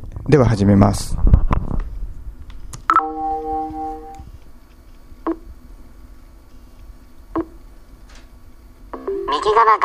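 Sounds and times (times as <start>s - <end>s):
speech: 0.3s - 1.2s
computer connected to a camera giving a multi-tone electronic beep: 2.9s - 4.2s, 9.0s - 9.7s.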